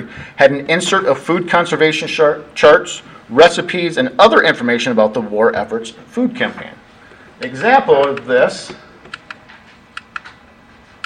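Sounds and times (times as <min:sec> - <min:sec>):
speech: 0:00.0 - 0:06.8, 0:07.4 - 0:08.8
sharp crisp clicks: 0:09.0 - 0:09.4, 0:10.0 - 0:10.4.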